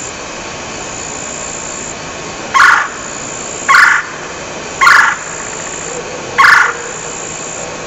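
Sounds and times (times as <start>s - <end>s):
male red-bellied woodpecker calling: 2.6s - 3.1s, 3.7s - 7.3s.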